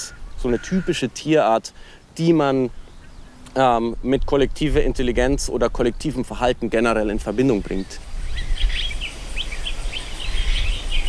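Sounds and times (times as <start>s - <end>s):
flock of common starlings calling over an open urban field: 0.0s - 3.5s, 6.4s - 11.0s
steady low rumble of wind or traffic: 0.0s - 11.0s
speech: 0.4s - 2.8s, 3.6s - 8.5s.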